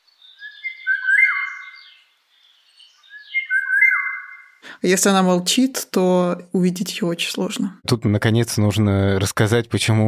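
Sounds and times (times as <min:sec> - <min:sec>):
Eurasian golden oriole singing: 0:00.0 - 0:04.6
speech: 0:04.8 - 0:10.0.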